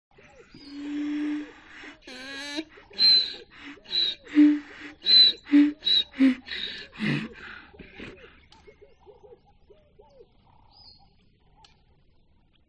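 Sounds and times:
donkey braying: 0:00.2 - 0:08.5.

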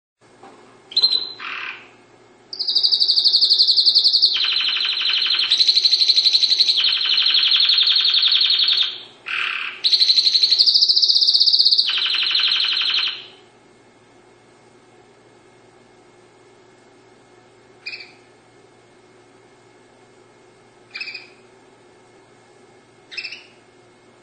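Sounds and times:
Dutch canary singing: 0:00.9 - 0:13.4, 0:17.8 - 0:18.3, 0:20.9 - 0:21.4, 0:23.1 - 0:23.6.

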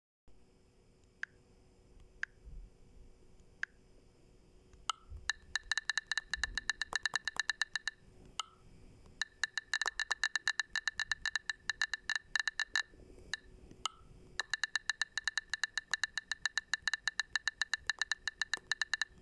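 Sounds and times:
Huawei phone typing sound: 0:04.8 - 0:19.2.

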